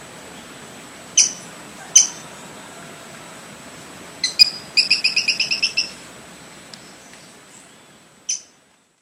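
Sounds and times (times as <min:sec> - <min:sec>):
Brown-breasted pygmy-tyrant song of high chipping notes: 0:01.2 - 0:02.2, 0:04.2 - 0:06.1, 0:06.9 - 0:08.6.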